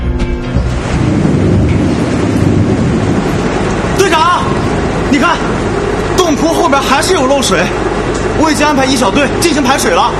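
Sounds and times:
heavy rain downpour in a sudden summer storm: 0.5 - 10.1
speech: 6.4 - 10.1.

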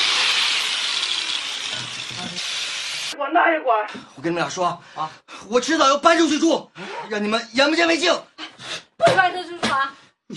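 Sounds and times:
power cutter grinding a kitchen knife: 0.0 - 3.1
speech: 2.1 - 8.3, 9.0 - 10.3.

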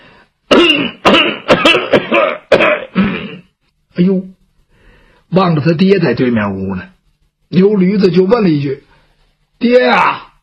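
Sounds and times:
storyteller imitating an old man coughing and clearing his throat: 0.5 - 3.5
speech: 5.3 - 8.9, 9.6 - 10.3.

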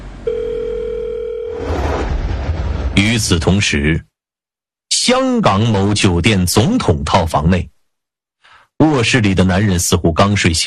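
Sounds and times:
telephone tone while dialing a number on a mobile phone: 0.2 - 1.7
broad rushing noise: 1.6 - 3.7
speech: 3.0 - 4.1, 5.0 - 7.7, 8.8 - 10.6.

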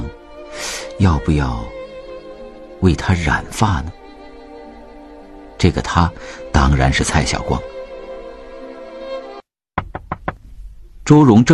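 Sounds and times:
speech: 1.0 - 1.8, 2.8 - 4.0, 5.6 - 7.7, 11.1 - 11.5
sharp knocks on a door: 9.8 - 10.4.

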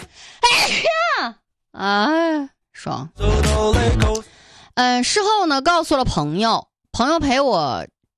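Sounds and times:
loud sneeze with a voiced falling tail: 0.4 - 1.1
speech: 1.8 - 7.9
soft breathy intake: 4.2 - 4.7.

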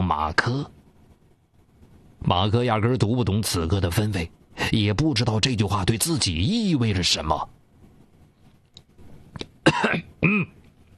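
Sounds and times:
speech: 0.1 - 0.8, 2.2 - 7.6, 9.8 - 10.5
man clearing his throat: 9.6 - 10.6
man giving rough coughs: 9.6 - 10.6.

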